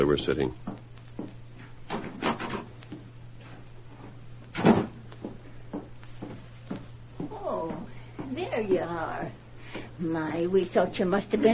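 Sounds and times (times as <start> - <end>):
speech: 0.0 - 0.9, 10.2 - 11.5
faint steady low hum: 0.0 - 11.5
rear door of a ranch home opening and closing: 4.6 - 5.0.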